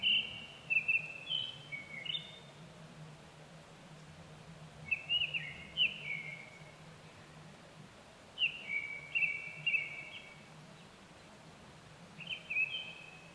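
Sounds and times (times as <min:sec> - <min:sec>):
Japanese thrush song: 0:00.0 - 0:02.4, 0:04.8 - 0:06.7, 0:08.4 - 0:10.4, 0:12.2 - 0:13.3.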